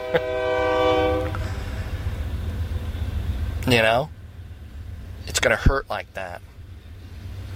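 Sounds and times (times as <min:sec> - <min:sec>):
loud chord-like train horn blast: 0:00.0 - 0:02.0
low rumble of a passing train: 0:00.0 - 0:07.5
speech: 0:00.1 - 0:00.5, 0:03.7 - 0:04.2, 0:05.3 - 0:06.5.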